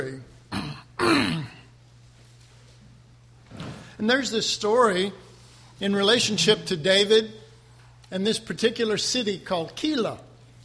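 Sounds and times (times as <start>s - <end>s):
man clearing his throat with a gravelly rasp: 0.5s - 1.7s
speech: 4.0s - 5.2s, 5.8s - 7.4s, 8.1s - 10.3s.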